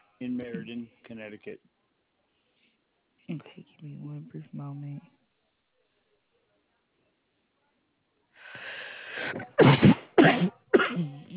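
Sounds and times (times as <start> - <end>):
speech: 0.2 - 1.8, 3.3 - 5.1
rising drawn-in breath: 8.4 - 9.5
loud explosive sneezes: 9.1 - 11.3.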